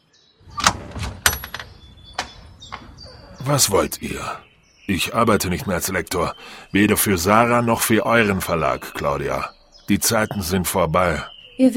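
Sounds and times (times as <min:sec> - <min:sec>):
door latch and handle clicking and clunking as a door is opened: 0:00.5 - 0:03.2
speech: 0:03.4 - 0:11.7.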